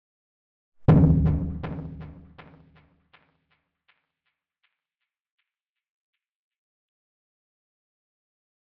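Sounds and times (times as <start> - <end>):
abstract timbale drum impact hit with echo: 0.9 - 2.6.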